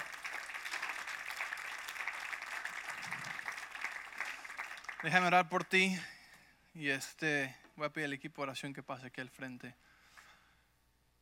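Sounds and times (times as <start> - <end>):
crowd clapping: 0.0 - 5.8
speech: 5.0 - 6.1, 6.8 - 9.9.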